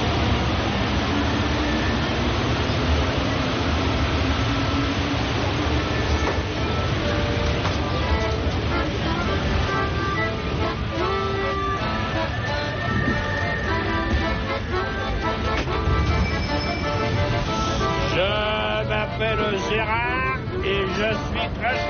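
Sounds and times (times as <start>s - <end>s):
metro train rumbling in motion: 0.0s - 21.8s
whining squealing tones of a rolling metro carriage: 11.7s - 15.1s, 15.9s - 18.2s.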